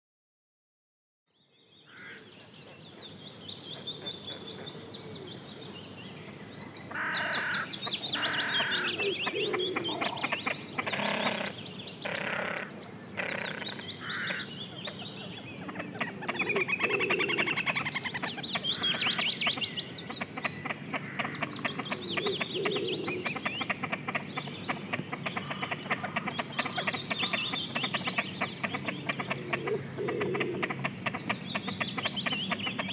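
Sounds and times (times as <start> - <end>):
Great Crested Grebe calling: 6.9 - 32.9.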